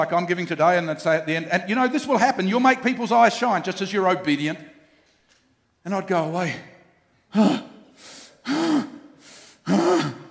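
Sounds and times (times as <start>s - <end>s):
speech: 0.0s - 4.7s, 5.8s - 6.7s, 7.3s - 7.7s
person gasping: 7.3s - 10.2s.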